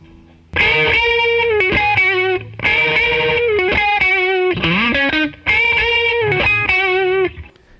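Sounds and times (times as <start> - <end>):
electric guitar lead line through an overdrive pedal: 0.5 - 7.5.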